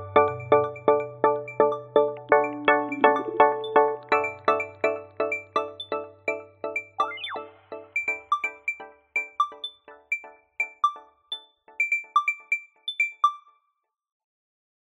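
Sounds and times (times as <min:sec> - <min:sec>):
alarm ringtone: 0:00.2 - 0:13.6.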